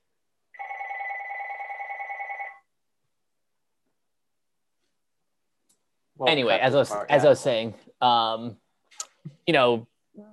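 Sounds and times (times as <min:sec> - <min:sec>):
telephone bell ringing with an electronic warble: 0:00.6 - 0:02.7
speech: 0:06.2 - 0:10.3.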